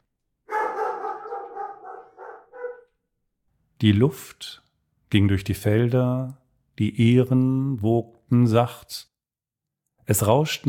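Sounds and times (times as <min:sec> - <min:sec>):
dog barking threateningly: 0:00.5 - 0:03.0
speech: 0:03.8 - 0:09.1, 0:10.1 - 0:10.6.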